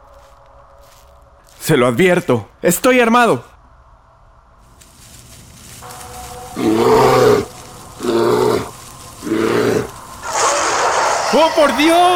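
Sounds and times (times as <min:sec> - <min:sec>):
speech: 0:01.6 - 0:03.5
brown bear rough breathy huff: 0:06.6 - 0:10.8
brown bear roaring: 0:06.6 - 0:12.0.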